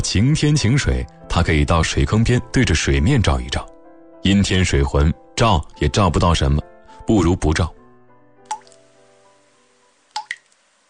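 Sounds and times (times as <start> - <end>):
speech: 0.1 - 7.8
water dripping from eaves after rain: 8.5 - 8.9, 10.1 - 10.7.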